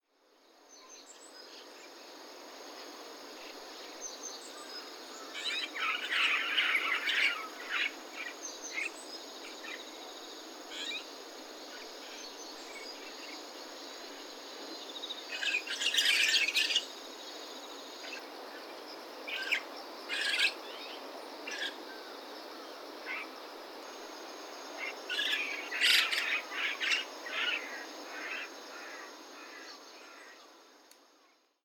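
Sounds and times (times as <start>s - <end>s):
chestnut-cheeked starling calling at the first regulating pond: 5.2s - 9.0s, 15.3s - 16.9s, 19.3s - 20.6s, 24.7s - 30.4s.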